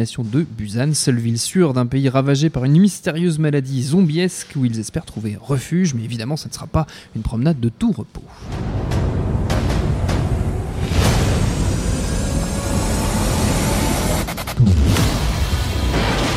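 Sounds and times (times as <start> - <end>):
speech: 0.0 - 9.0
constant heavy rumble: 8.4 - 16.3
loud explosions in a film trailer: 8.4 - 16.3.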